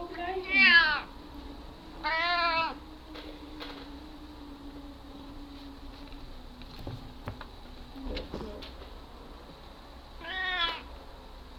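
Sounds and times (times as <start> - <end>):
cat meowing: 0.4 - 1.1, 2.0 - 2.8, 10.2 - 10.9
soft bumps and rustles: 5.5 - 9.0.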